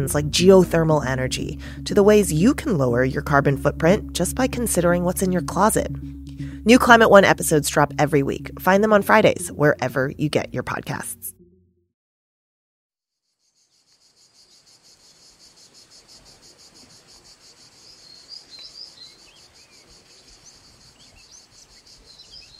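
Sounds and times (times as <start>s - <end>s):
speech: 0.0s - 11.3s
crickets and other insects in a southern European native forest: 13.6s - 22.5s
high bird chirps in a southern European native forest: 17.6s - 22.5s.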